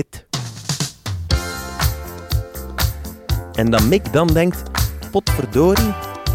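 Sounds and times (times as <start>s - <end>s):
speech: 0.0s - 0.3s, 3.6s - 6.1s
punchy drum groove of a soul record: 0.0s - 6.3s
warm bass line: 1.3s - 6.3s.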